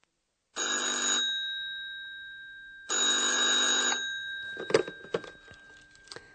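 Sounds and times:
hotel reception telephone ringing with a trilling electronic bell: 0.6s - 6.1s
clatter and knock of a telephone receiver: 3.9s - 5.6s.

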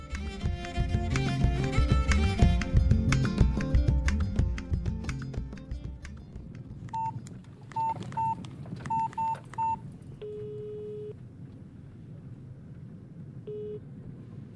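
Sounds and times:
music: 0.0s - 7.0s
mobile phone keypad dialing beeps in the back seat of a parked car: 6.9s - 7.2s, 7.8s - 11.2s.

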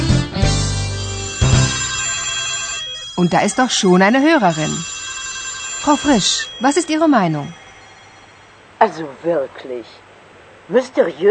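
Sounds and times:
electronic telephone ringing: 0.8s - 9.0s
speech: 3.2s - 5.0s, 5.8s - 7.6s, 8.8s - 10.0s, 10.7s - 11.2s.

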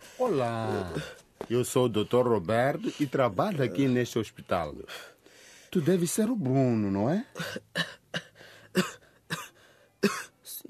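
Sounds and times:
speech: 0.2s - 8.2s, 8.8s - 9.0s, 10.0s - 10.3s
man coughing harshly in a hospital: 7.4s - 10.3s.

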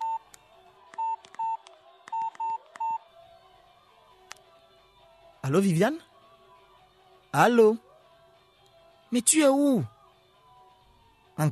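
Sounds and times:
touch-tone keypad beeps dialing a telephone number: 1.0s - 3.0s
speech: 5.4s - 6.1s, 7.3s - 7.8s, 9.1s - 9.9s.

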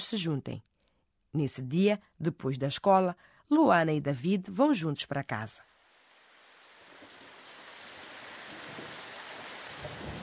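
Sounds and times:
speech: 0.1s - 0.7s, 1.3s - 5.7s
heavy rain pouring: 5.8s - 10.2s.

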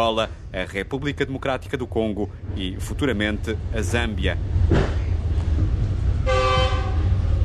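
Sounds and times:
speech: 0.0s - 5.0s
train rumbling along the Lobito Corridor railway line in Angola: 0.0s - 7.4s
loud sustained train horn blast: 6.2s - 7.3s.

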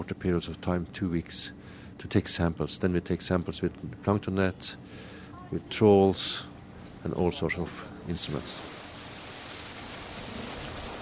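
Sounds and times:
speech: 0.0s - 8.8s
wind over cold ocean: 0.0s - 10.9s
cold ocean water washing among floating glacier ice, heard through open hatch: 8.1s - 10.9s.

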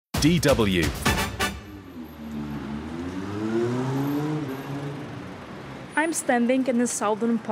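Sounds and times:
speech: 0.2s - 1.1s, 6.0s - 7.5s
steady traffic noise: 0.7s - 7.5s
car engine accelerating along a street in southern Berlin: 1.7s - 5.9s.

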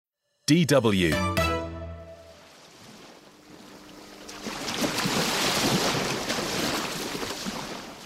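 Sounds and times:
speech: 0.5s - 1.4s
ocean waves breaking against the shore: 2.2s - 8.0s.

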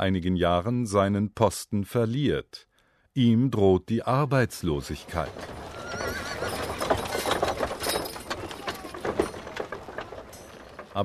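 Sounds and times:
speech: 0.0s - 6.6s
hooves of a horse-drawn mail coach clopping: 4.9s - 11.0s
post horses whinnying: 5.0s - 10.9s.

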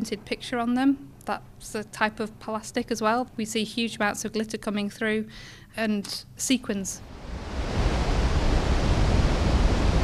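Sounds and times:
speech: 0.0s - 7.6s
waves breaking on a beach above a wastewater pipe: 7.0s - 10.0s.

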